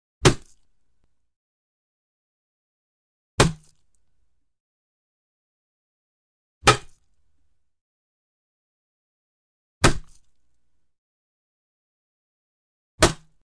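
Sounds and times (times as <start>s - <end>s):
heavy wooden billy club hitting a skull: 0.2s - 0.6s, 3.4s - 3.8s, 6.6s - 7.0s, 9.8s - 10.3s, 13.0s - 13.4s.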